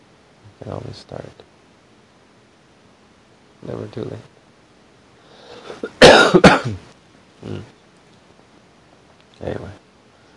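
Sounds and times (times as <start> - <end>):
speech: 0.6 - 1.5, 3.6 - 4.3, 5.8 - 7.8, 9.4 - 9.8
person coughing with rough raspy texture: 5.7 - 6.8
soft throat clearing: 5.7 - 6.8.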